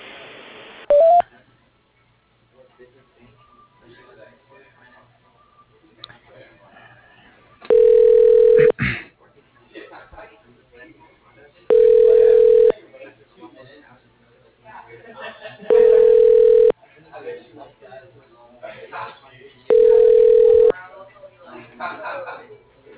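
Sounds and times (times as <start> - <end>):
telephone keypad tones while transferring a call to voicemail: 0.9 - 1.2, 7.7 - 8.7, 11.7 - 12.7, 15.7 - 16.7, 19.7 - 20.7
quiet talk: 1.2 - 22.9
laughter: 15.0 - 16.0, 21.5 - 22.6.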